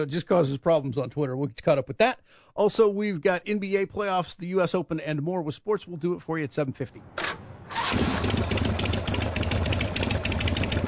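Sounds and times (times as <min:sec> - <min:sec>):
speech: 0:00.0 - 0:08.0
scooter engine starting and running: 0:07.7 - 0:10.8.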